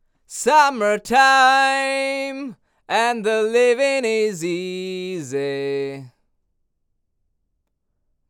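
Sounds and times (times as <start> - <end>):
vocal: 0.3 - 6.2.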